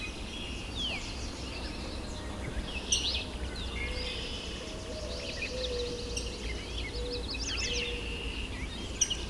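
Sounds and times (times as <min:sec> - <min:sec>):
yellow warbler singing: 0:00.0 - 0:09.2.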